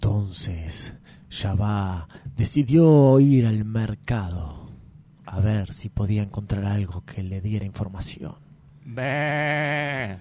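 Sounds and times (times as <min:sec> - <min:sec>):
speech: 0:00.3 - 0:04.7, 0:05.3 - 0:10.1
sheep bleating: 0:08.8 - 0:10.1.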